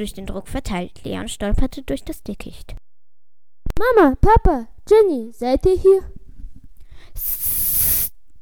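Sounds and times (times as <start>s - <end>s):
speech: 0.0s - 2.8s, 3.8s - 6.1s
snake hissing: 7.2s - 8.2s.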